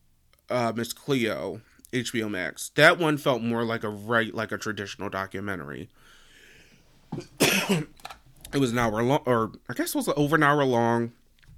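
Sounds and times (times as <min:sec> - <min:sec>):
speech: 0:00.5 - 0:06.2, 0:07.1 - 0:11.2
person coughing from not enough water: 0:07.2 - 0:08.0.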